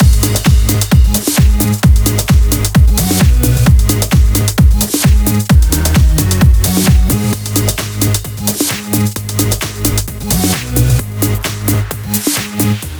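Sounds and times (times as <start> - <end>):
131BPM music mix: 0.0 - 12.9.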